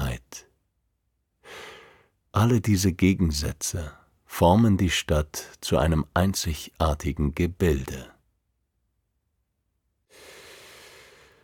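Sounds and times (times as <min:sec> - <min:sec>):
single deep inhaled breath: 0:01.4 - 0:02.2, 0:10.1 - 0:11.4
speech: 0:02.4 - 0:08.1.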